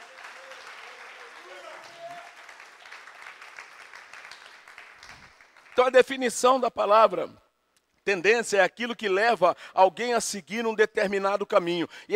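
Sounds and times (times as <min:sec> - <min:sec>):
voices cheering: 0:00.0 - 0:02.7
audience applauding: 0:00.0 - 0:06.0
speech: 0:05.8 - 0:07.4, 0:08.1 - 0:12.1.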